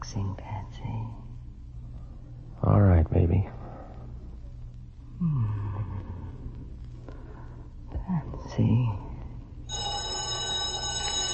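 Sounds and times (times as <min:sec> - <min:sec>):
low hum: 0:00.0 - 0:11.3
telephone ringing with electronic-sounding ring: 0:09.7 - 0:11.3.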